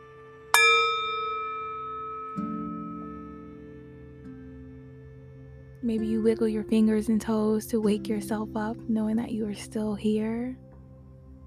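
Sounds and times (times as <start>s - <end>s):
single bell struck and ringing: 0.6s - 3.3s
speech: 5.8s - 10.6s.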